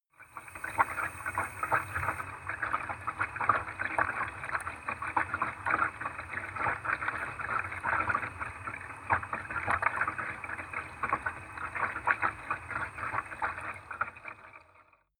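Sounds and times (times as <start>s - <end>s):
underwater sound in a bathtub: 0.1s - 15.1s.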